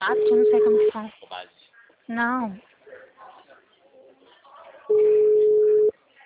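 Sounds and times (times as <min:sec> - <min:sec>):
telephone tone after a dropped call: 0:00.0 - 0:00.9, 0:04.9 - 0:05.9
faint voices: 0:00.0 - 0:06.2
speech: 0:00.1 - 0:02.7.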